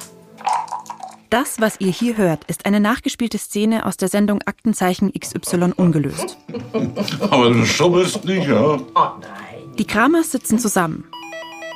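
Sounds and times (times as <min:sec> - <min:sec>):
speech: 0:01.3 - 0:11.2
laughter: 0:05.4 - 0:08.9
electronic doorbell ringing at the front door of a family's home: 0:11.1 - 0:11.7.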